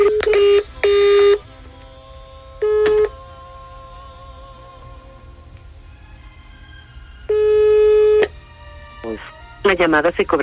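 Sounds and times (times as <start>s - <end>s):
flat electronic telephone call beeps from a call to a switched-off mobile phone: 0.0s - 1.4s, 2.6s - 3.1s, 7.3s - 8.3s
faint humming tones: 0.0s - 10.4s
speech: 9.7s - 10.4s.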